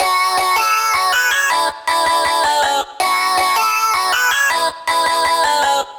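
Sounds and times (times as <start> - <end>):
vocoder vocal chop loop: 0.0 - 5.9.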